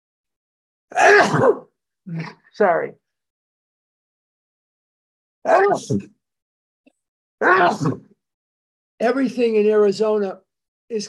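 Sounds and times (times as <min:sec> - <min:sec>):
speech: 0:00.9 - 0:03.0, 0:05.4 - 0:06.2, 0:07.4 - 0:08.1, 0:09.0 - 0:11.0
sneeze: 0:01.0 - 0:01.7, 0:07.4 - 0:08.0.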